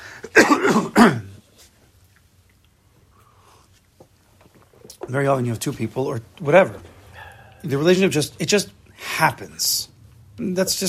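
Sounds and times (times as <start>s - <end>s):
throat clearing and coughing: 0.2s - 1.4s
speech: 1.0s - 1.2s, 5.1s - 6.9s, 7.6s - 10.8s.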